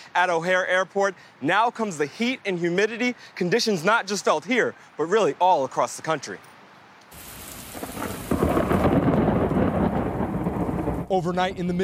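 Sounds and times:
speech: 0.2s - 6.5s, 11.1s - 11.8s
heavy rain pouring in a storm: 7.1s - 11.6s
gusting high wind: 7.1s - 11.8s
deep rumble of thunder: 7.2s - 11.8s.

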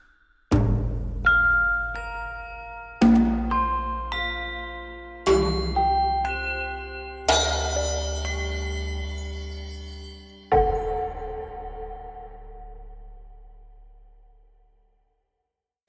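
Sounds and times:
doorbell chiming: 1.3s - 12.2s.

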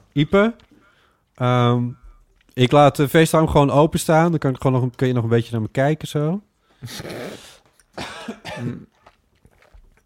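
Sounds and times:
speech: 0.2s - 0.7s, 1.4s - 2.0s, 2.6s - 7.4s, 8.0s - 9.0s
dry cough: 6.8s - 9.0s.

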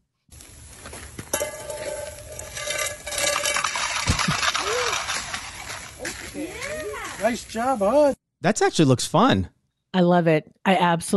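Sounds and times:
metal frying pans sliding on ice in curling: 0.9s - 7.5s
clanking knocks and ringing metallic tones: 1.3s - 6.2s
speech: 7.2s - 11.1s.

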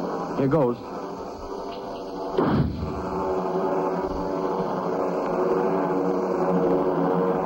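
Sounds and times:
steady low drone: 0.0s - 7.4s
flare gun firing: 2.3s - 3.4s.

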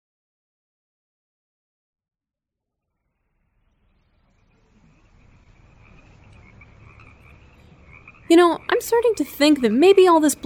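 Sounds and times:
chorus of frogs croaking: 3.0s - 10.4s
speech: 8.3s - 10.4s.

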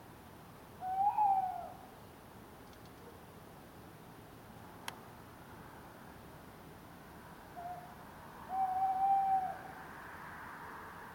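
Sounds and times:
male tawny owl hooting at night in a garden: 0.8s - 1.8s, 7.6s - 7.9s, 8.5s - 9.7s.

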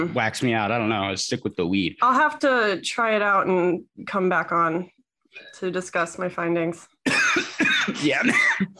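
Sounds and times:
speech: 0.0s - 8.7s
person coughing harshly: 7.0s - 8.7s.

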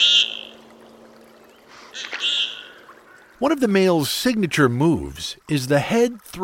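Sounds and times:
common goldeneye ducks giving courtship calls on icy Lake Champlain, Vermont: 0.0s - 0.6s, 1.7s - 3.3s
faint steady hum: 0.0s - 6.2s
watery background: 0.0s - 6.4s
speech: 3.4s - 6.4s.

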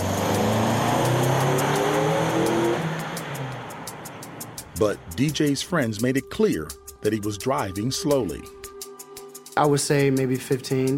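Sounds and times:
car engine accelerating in police test: 0.0s - 5.4s
road noise: 0.0s - 6.0s
speech: 4.8s - 8.6s, 9.6s - 10.9s.

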